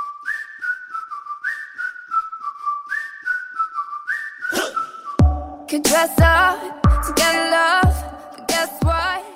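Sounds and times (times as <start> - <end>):
bright whistled melody in a pop song: 0.0 - 9.3
loud punchy pop track with heavy drums and deep bass: 4.5 - 9.2.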